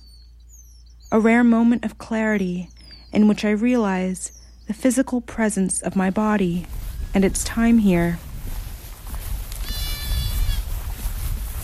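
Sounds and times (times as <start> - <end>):
speech: 1.1 - 8.3
outdoor wind rumble: 5.2 - 11.6
goat bleating on a hillside: 9.5 - 10.7.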